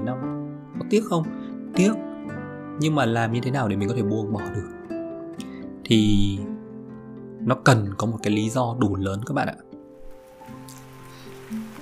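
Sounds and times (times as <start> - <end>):
speech: 0.0 - 2.1, 2.8 - 4.8, 5.9 - 6.5, 7.4 - 9.6
steady rain pattering: 10.0 - 11.8.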